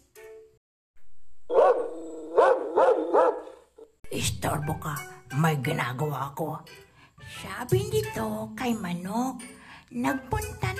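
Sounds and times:
dog barking: 0:01.5 - 0:03.9
speech: 0:04.2 - 0:10.7.

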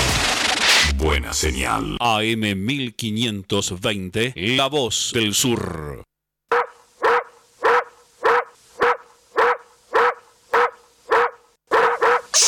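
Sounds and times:
speech: 0:01.0 - 0:06.1
dog barking: 0:06.5 - 0:12.4.

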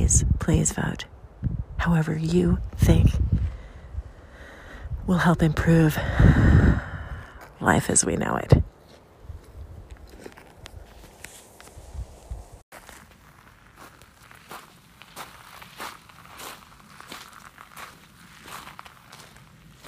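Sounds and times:
speech: 0:00.1 - 0:01.1, 0:01.8 - 0:03.4, 0:05.1 - 0:06.8, 0:07.6 - 0:08.7
footsteps crunching across a nearly dry riverbed of the Merced River: 0:08.7 - 0:19.8.

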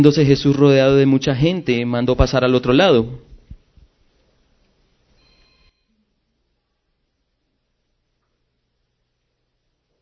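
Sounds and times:
speech: 0:00.0 - 0:03.3
cell phone ringtone: 0:05.2 - 0:06.0.

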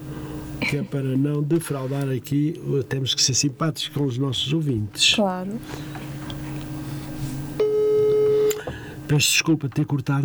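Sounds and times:
low hum: 0:00.0 - 0:10.2
speech: 0:00.6 - 0:06.0, 0:09.1 - 0:10.2
incoming telephone call signal beep on a radio show: 0:07.6 - 0:08.6.

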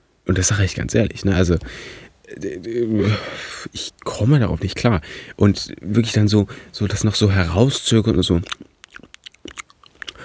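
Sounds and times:
speech: 0:00.3 - 0:09.1
person imitating loud wet smacking chewing: 0:08.3 - 0:10.2.

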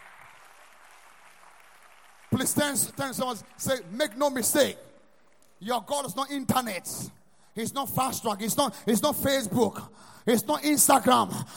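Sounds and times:
crowd clapping steadily: 0:00.0 - 0:06.0
speech: 0:02.4 - 0:04.9, 0:05.6 - 0:11.5.

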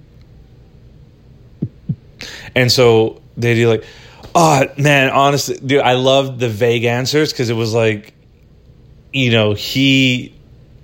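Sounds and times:
low droning hum: 0:00.0 - 0:10.8
deep heartbeat thump sound effect: 0:01.6 - 0:02.1
speech: 0:02.6 - 0:08.2, 0:09.1 - 0:10.8.

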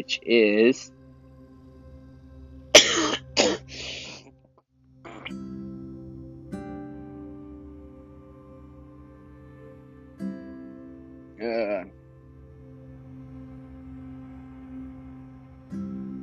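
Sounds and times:
speech: 0:00.0 - 0:01.0
person coughing: 0:02.8 - 0:04.2, 0:05.1 - 0:05.3
throat clearing: 0:02.8 - 0:04.2, 0:05.1 - 0:05.4, 0:11.4 - 0:11.8.

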